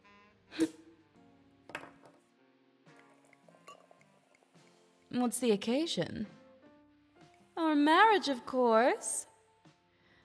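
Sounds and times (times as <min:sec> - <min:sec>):
champagne poured into glasses: 0:02.9 - 0:04.8
glassy clink: 0:03.3 - 0:04.5
speech: 0:05.2 - 0:06.4, 0:07.8 - 0:09.3.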